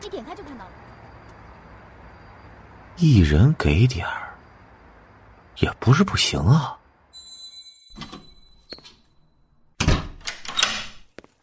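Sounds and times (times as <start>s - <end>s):
speech: 3.0s - 4.2s, 5.6s - 6.8s
door lock clicks and clunks: 9.8s - 11.1s.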